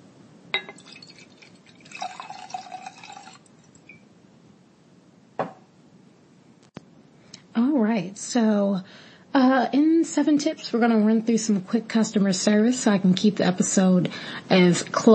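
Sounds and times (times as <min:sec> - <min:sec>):
drink pouring into a glass: 0:00.6 - 0:04.0
sharp clinks of glass: 0:00.6 - 0:04.0
speech: 0:07.9 - 0:15.1.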